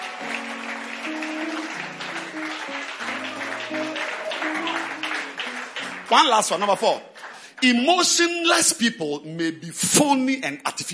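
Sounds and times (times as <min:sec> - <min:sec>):
audience at a meeting clapping: 0:00.0 - 0:08.3
speech: 0:06.1 - 0:10.9.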